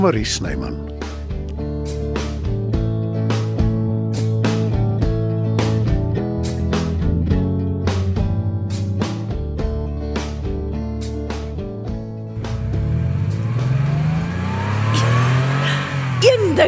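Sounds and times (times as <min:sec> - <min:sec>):
speech: 0:00.0 - 0:00.9
music: 0:00.0 - 0:16.6
car engine revving hard as the vehicle speeds away: 0:12.3 - 0:16.6.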